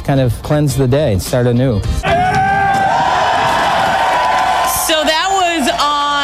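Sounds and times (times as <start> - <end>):
speech: 0.1 - 2.2
higher individual yells: 2.0 - 6.2
large crowd cheering and whooping: 2.0 - 6.2.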